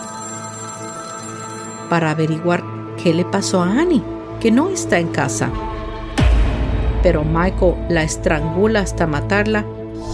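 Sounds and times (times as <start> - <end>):
telephone ringing with a trilling bell tone: 0.0 - 2.4
speech: 1.9 - 5.7, 7.0 - 10.1.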